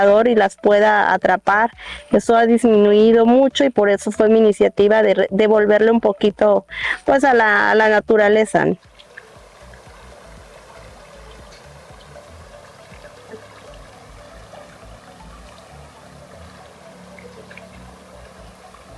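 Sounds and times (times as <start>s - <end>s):
speech: 0.0s - 8.9s
water bubbling and trickling: 8.6s - 18.9s.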